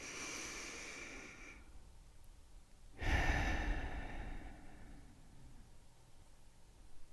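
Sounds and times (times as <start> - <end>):
slow deep breath in and forceful exhale: 0.0 - 1.8, 3.0 - 5.8.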